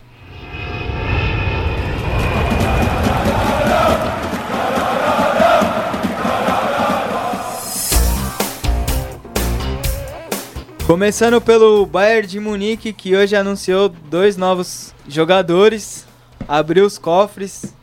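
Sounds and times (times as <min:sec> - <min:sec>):
airplane engine sound effect jingle: 0:00.0 - 0:09.8
speech: 0:10.9 - 0:17.8.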